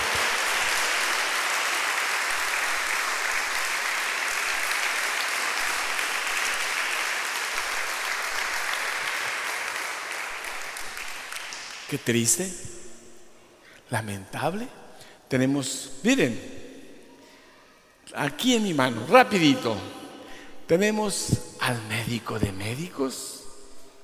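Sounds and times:
church audience applauding: 0:00.0 - 0:11.9
speech: 0:11.9 - 0:12.8, 0:13.9 - 0:16.6, 0:18.1 - 0:20.0, 0:20.7 - 0:23.3.

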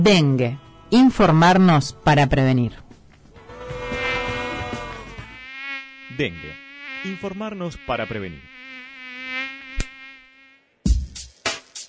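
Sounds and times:
speech: 0:00.0 - 0:02.8, 0:06.2 - 0:08.5
mosquito buzzing: 0:03.4 - 0:11.8.

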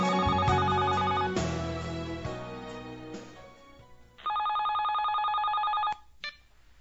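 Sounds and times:
electronic telephone ringing: 0:00.2 - 0:01.3, 0:04.2 - 0:06.0.

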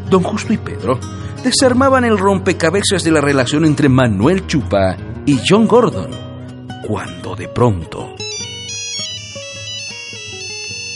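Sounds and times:
speech: 0:00.1 - 0:06.2, 0:06.9 - 0:08.2
phone ringing with an incoming call: 0:08.2 - 0:10.9.

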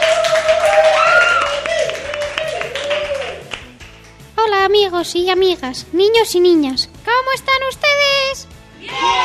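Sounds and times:
crowd clapping: 0:00.0 - 0:04.3
speech: 0:04.9 - 0:09.2.

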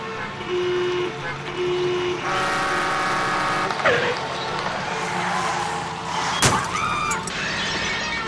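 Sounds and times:
busy street traffic with engines: 0:00.0 - 0:08.2
car horns honking: 0:00.0 - 0:08.2
crash and clatter of two cars colliding: 0:03.2 - 0:08.2
brief shrill squeal: 0:04.1 - 0:08.2.

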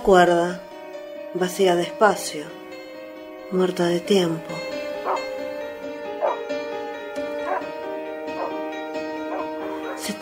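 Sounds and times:
speech: 0:00.0 - 0:00.7, 0:01.3 - 0:02.6, 0:03.5 - 0:04.7
dog barking: 0:05.0 - 0:05.3, 0:06.2 - 0:06.4, 0:07.4 - 0:07.7, 0:08.4 - 0:08.6, 0:09.3 - 0:10.0.

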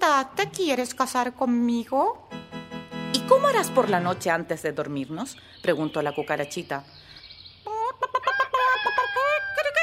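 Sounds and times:
speech: 0:00.2 - 0:02.4, 0:03.2 - 0:07.1
rooster crowing loudly: 0:08.2 - 0:09.7.

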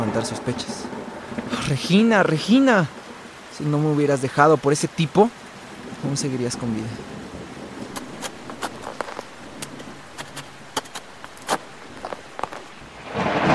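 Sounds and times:
speech: 0:00.0 - 0:03.0, 0:03.6 - 0:05.4, 0:06.0 - 0:07.2
steady hiss of rain with scattered sharp drops: 0:00.0 - 0:13.5
loud rushing thunder with downpour: 0:13.0 - 0:13.5.

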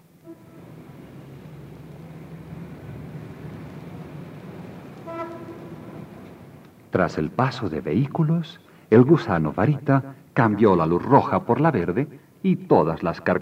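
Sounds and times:
tram horn toot: 0:00.0 - 0:06.8
tram rumbling past: 0:00.0 - 0:08.2
speech: 0:07.0 - 0:13.4.

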